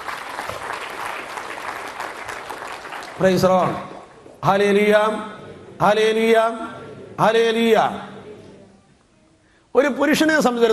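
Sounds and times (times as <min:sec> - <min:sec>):
church congregation clapping during worship: 0:00.0 - 0:04.4
speech: 0:03.2 - 0:08.1, 0:09.8 - 0:10.7.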